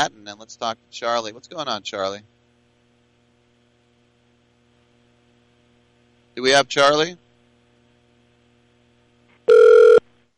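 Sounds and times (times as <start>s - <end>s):
speech: 0.0s - 2.4s, 6.4s - 7.2s
telephone dialing tone beep on a call-in line: 9.5s - 10.0s.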